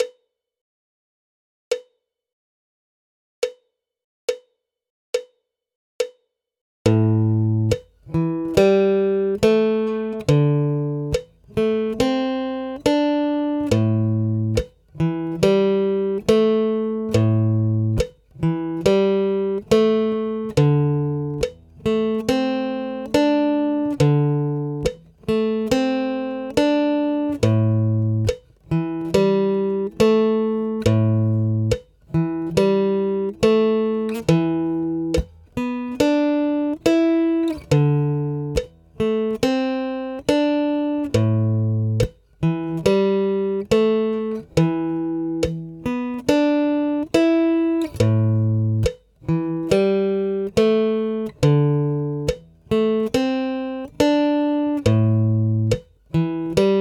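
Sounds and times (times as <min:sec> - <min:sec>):
slow easy guitar riff: 0:06.9 - 0:56.8.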